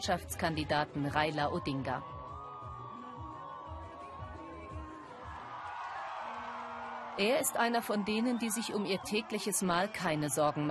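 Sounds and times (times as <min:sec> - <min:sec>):
speech: 0:00.0 - 0:02.2, 0:07.2 - 0:10.6
large crowd cheering and shouting for a presidential candidate in Naivasha: 0:01.0 - 0:10.6.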